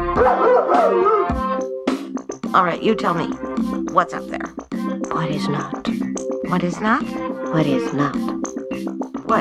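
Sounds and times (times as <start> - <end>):
person imitating dog barking and howling: 0.2 - 1.4
speech: 2.5 - 8.5, 9.3 - 9.4.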